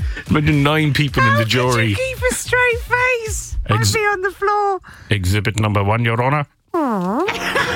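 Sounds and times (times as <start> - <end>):
speech: 0.2 - 7.5
fart sound effect: 6.7 - 7.6.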